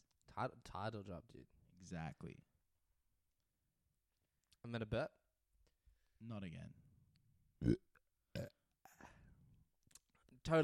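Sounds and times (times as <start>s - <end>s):
speech: 0.4s - 2.5s, 4.6s - 5.2s, 6.2s - 6.8s, 7.6s - 8.5s, 10.4s - 10.6s
belching: 7.6s - 8.6s.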